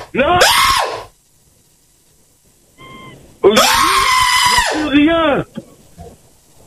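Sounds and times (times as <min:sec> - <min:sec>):
speech: 0:00.1 - 0:00.7
person yelling loudly: 0:03.5 - 0:05.5.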